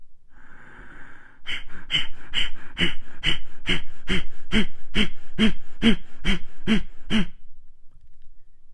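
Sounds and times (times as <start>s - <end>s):
rapid forced exhalations of a breathing exercise: 0.3s - 7.4s.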